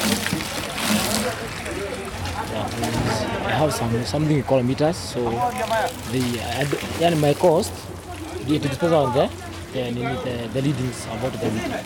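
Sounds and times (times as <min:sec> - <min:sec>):
water sloshing and splashing at an outdoor communal tap filling jerrycans: 0:00.0 - 0:03.4, 0:05.3 - 0:09.8
voices: 0:00.0 - 0:11.8
speech: 0:02.6 - 0:11.8.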